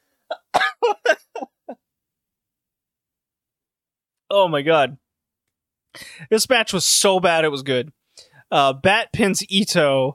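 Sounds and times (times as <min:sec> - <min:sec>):
person coughing and laughing: 0:00.3 - 0:01.8
speech: 0:04.3 - 0:05.0, 0:05.9 - 0:10.1.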